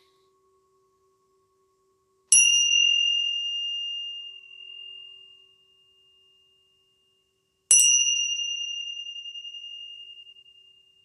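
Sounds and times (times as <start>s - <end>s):
Tibetan tingsha bells ringing: 2.3s - 11.0s.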